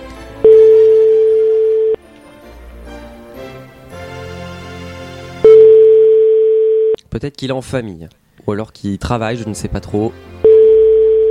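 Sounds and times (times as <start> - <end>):
soft music: 0.0 - 6.2, 8.5 - 11.3
telephone ringing tones on an outgoing call: 0.4 - 2.0, 5.4 - 7.0, 10.4 - 11.3
speech: 7.2 - 10.3.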